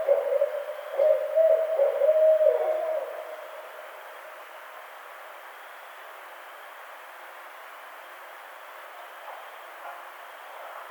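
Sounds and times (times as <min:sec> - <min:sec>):
barred owl hooting: 0:00.0 - 0:03.6
background hiss: 0:00.0 - 0:10.8.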